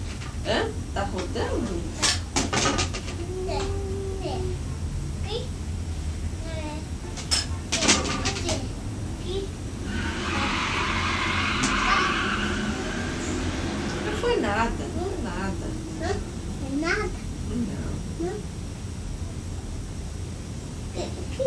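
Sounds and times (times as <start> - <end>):
rumbling road noise: 0.0 - 21.0
speech: 0.4 - 2.0
child chattering: 3.2 - 4.6, 21.0 - 21.4
car braking with tire squeal: 9.7 - 15.8.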